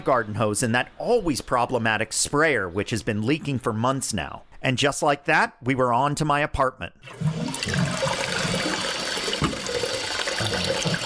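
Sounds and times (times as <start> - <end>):
speech: 0.0 - 8.0
toilet flushing with swirling water: 7.0 - 11.0.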